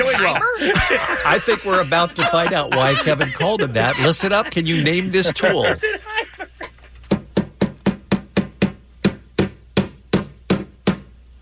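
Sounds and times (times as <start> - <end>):
laughter: 0.0 - 7.1
speech: 0.2 - 6.1
hammer knocking: 7.1 - 11.1.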